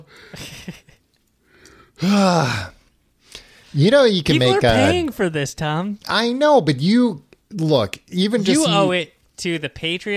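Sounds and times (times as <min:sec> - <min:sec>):
speech: 0:00.0 - 0:00.5, 0:02.0 - 0:02.8, 0:03.7 - 0:10.1
loud drawn-out yawn: 0:02.0 - 0:02.8.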